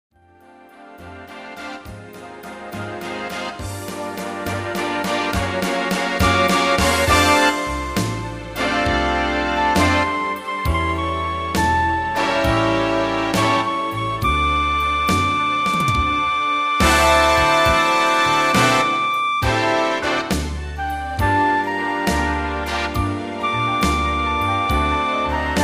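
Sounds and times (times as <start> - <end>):
MIDI horn sample: 1.1 - 25.6.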